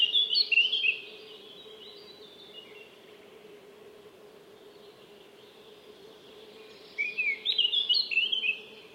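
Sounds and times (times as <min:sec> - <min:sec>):
Eurasian blackcap Sylvia atricapilla warbling song: 0:00.0 - 0:02.9, 0:06.5 - 0:08.9.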